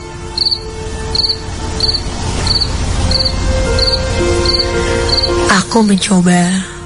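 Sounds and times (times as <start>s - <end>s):
crickets chirping at night: 0.3s - 5.5s
speech: 3.2s - 6.7s.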